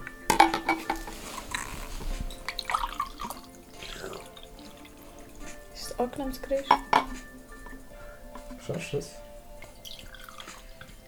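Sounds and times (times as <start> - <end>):
glass clinking: 0.0 - 11.0
drink pouring into a glass: 0.4 - 5.7, 9.6 - 11.0
speech: 6.0 - 7.3, 8.7 - 9.2.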